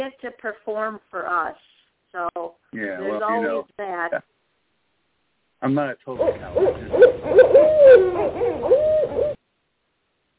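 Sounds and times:
speech: 0.0s - 4.3s, 5.6s - 9.3s
barred owl hooting as a Halloween sound effect: 6.2s - 9.4s.

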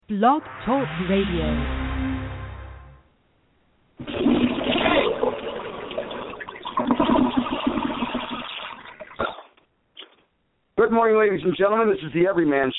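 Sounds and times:
speech: 0.1s - 1.8s, 10.9s - 12.7s
short low tone: 0.3s - 3.1s
toilet flushing: 4.0s - 9.3s.

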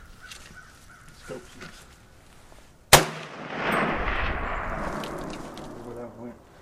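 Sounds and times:
gunshot fired outdoors: 2.9s - 6.0s
long rumbling echo of a gunshot: 3.0s - 6.6s.

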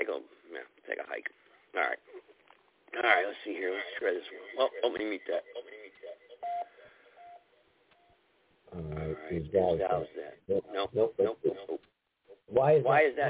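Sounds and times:
speech: 3.0s - 5.6s, 8.8s - 11.9s, 12.5s - 13.2s
faint beeping tones: 6.1s - 8.2s.

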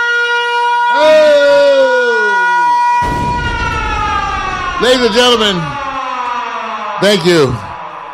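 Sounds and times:
wailing alarm siren: 0.0s - 8.1s
steady droning tones: 3.0s - 6.0s
speech: 4.8s - 5.8s, 7.0s - 7.7s.

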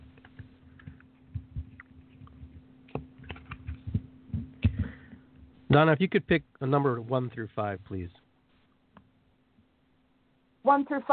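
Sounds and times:
faint steady hum: 0.0s - 11.1s
deck of animal cards being shuffled for a card reading: 0.1s - 4.9s
speech: 5.7s - 8.2s, 10.7s - 11.1s.

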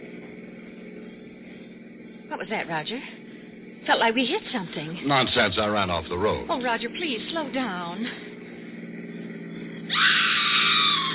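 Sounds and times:
low hum: 0.0s - 11.1s
speech: 2.3s - 3.2s, 3.8s - 8.3s, 10.0s - 10.3s
woman screaming: 9.9s - 11.1s.

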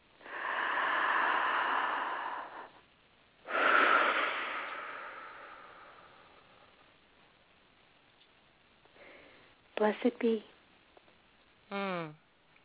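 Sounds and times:
deep breathing during a meditation: 0.2s - 6.9s, 9.0s - 9.6s
speech: 9.8s - 10.5s.

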